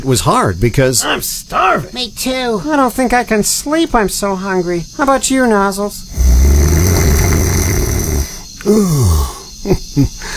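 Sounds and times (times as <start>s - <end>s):
speech: 0.0s - 7.2s, 8.7s - 10.3s
elephant snoring: 6.1s - 9.5s.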